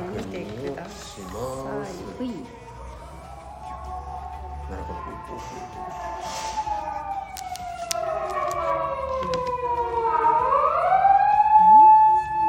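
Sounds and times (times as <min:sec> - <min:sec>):
ambulance siren passing outside on a road: 0:00.0 - 0:12.4.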